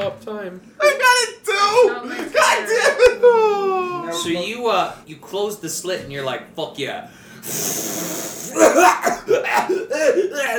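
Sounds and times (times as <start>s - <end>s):
speech: 0.0s - 10.5s
person imitating coughing with short throaty voiced bursts: 7.4s - 10.2s.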